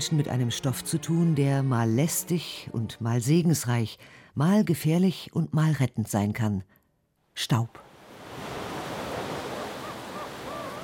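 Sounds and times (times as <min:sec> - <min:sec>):
speech: 0:00.0 - 0:06.8, 0:07.4 - 0:07.8
ocean waves breaking with sea spray: 0:07.8 - 0:10.8.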